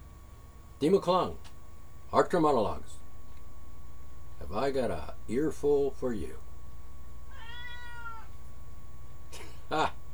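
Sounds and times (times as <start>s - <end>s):
low hum: 0.0s - 10.1s
speech: 0.8s - 1.5s, 2.1s - 3.0s, 4.5s - 6.4s, 9.7s - 10.0s
cat meowing: 7.3s - 8.4s.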